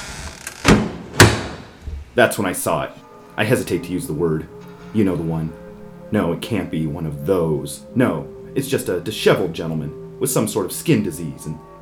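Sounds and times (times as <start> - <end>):
heavy mansion front door opening into foyer: 0.2 - 2.2
speech: 2.2 - 11.7.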